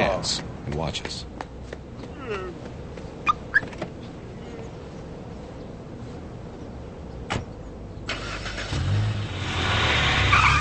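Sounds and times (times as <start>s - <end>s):
speech: 0.2s - 1.3s, 2.3s - 2.8s
car driving away: 8.1s - 10.6s.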